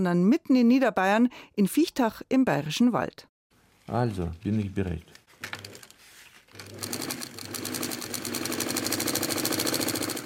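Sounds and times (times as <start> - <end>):
speech: 0.0 - 3.3, 3.9 - 5.2
sewing machine stitching fish leather: 6.5 - 10.2.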